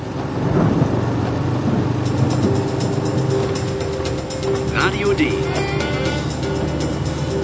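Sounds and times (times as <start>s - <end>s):
heavy rain pouring in Bavaria: 0.0s - 7.4s
low continuous rumble of thunder in Bavaria: 0.4s - 3.6s.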